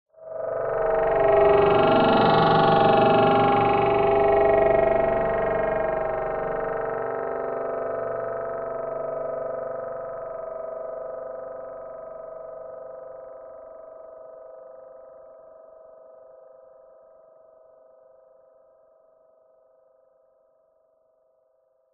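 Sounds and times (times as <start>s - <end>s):
FM growling delayed short drone: 0.2s - 11.1s.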